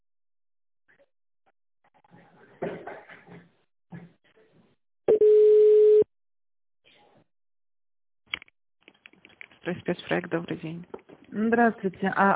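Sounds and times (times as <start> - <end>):
telephone line tone while call is transferred: 5.1 - 6.1
speech: 9.7 - 12.3.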